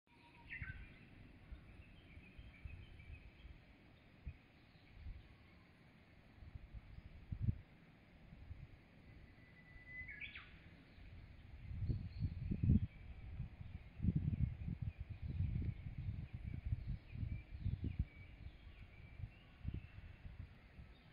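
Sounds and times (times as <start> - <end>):
birds tweeting: 0.1 - 21.1.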